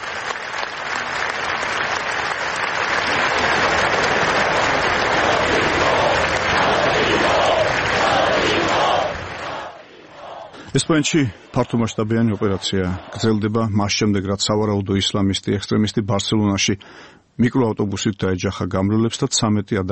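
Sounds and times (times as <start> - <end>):
large crowd in Barcelona applauding: 0.0 - 13.6
large crowd in Barcelona shouting: 2.9 - 13.7
speech: 10.8 - 19.9.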